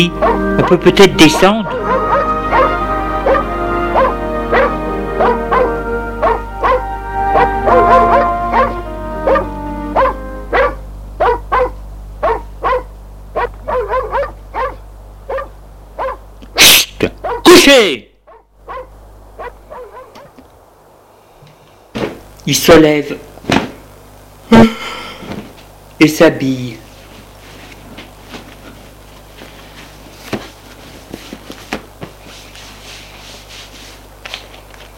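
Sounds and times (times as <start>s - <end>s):
speech: 0.0s - 1.8s, 22.5s - 23.3s, 26.0s - 26.8s
low steady hum: 0.0s - 34.9s
dog barking: 0.2s - 0.8s, 1.7s - 16.2s, 17.2s - 17.6s, 18.3s - 20.3s.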